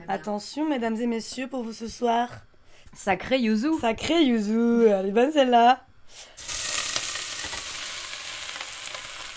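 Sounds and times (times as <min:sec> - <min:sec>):
speech: 0:00.1 - 0:06.5
shrimp sizzling in a hot pan: 0:06.4 - 0:09.3.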